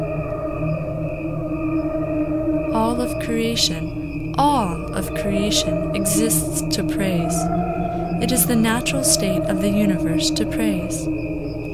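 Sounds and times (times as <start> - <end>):
brighter warbling swells and pulses from slowed-down cricket recording: 0.0 - 11.7
slowed-down cricket chirping as layered harmonic drone: 0.0 - 11.7
speech: 2.8 - 7.6, 8.2 - 11.3.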